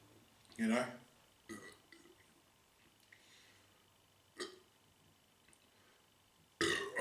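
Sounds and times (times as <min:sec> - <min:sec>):
speech: 0:00.6 - 0:01.7
short burps: 0:01.5 - 0:02.2, 0:04.4 - 0:04.7, 0:06.6 - 0:06.9
faint breathy noise: 0:03.0 - 0:04.0, 0:05.6 - 0:06.4.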